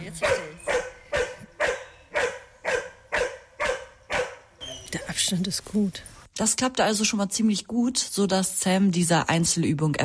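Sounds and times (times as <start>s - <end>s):
speech: 0.1s - 0.5s, 5.2s - 10.0s
search dog barking: 0.2s - 4.5s.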